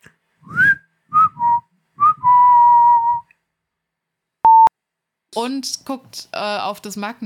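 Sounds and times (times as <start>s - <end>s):
man whistling: 0.4s - 3.3s
electronic beep: 4.5s - 4.7s
speech: 5.4s - 7.2s.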